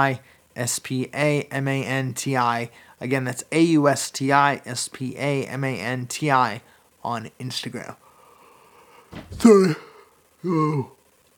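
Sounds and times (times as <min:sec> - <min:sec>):
speech: 0:00.0 - 0:08.0, 0:09.1 - 0:11.0
person yawning: 0:09.2 - 0:11.0.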